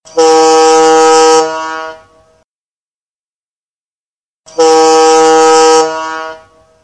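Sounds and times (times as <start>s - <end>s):
fog horn prolonged blasts: 0.0s - 2.4s, 4.5s - 6.8s.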